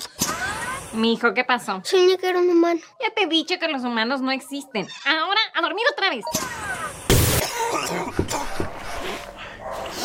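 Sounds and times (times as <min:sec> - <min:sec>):
speech: 0:00.9 - 0:06.8
loud harsh cough: 0:06.4 - 0:08.7.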